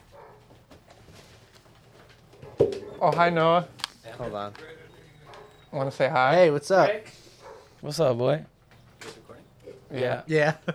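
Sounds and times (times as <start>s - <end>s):
dogs barking: 0.0s - 0.6s, 2.3s - 2.8s, 5.2s - 5.8s, 7.3s - 7.8s
speech: 3.0s - 4.8s, 5.7s - 7.2s, 7.8s - 8.5s, 9.9s - 10.7s.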